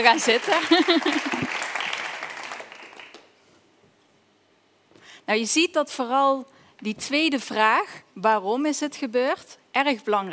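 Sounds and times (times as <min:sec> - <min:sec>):
speech: 0:00.0 - 0:01.4, 0:05.3 - 0:10.3
crowd applause for a volunteer: 0:00.0 - 0:03.3
laughter: 0:00.4 - 0:01.6.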